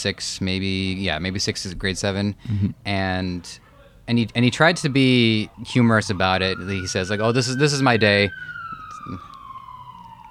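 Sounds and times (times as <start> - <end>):
speech: 0.0 - 9.3
low traffic rumble: 0.0 - 10.2
police car siren wailing as it passes outside: 4.2 - 10.2.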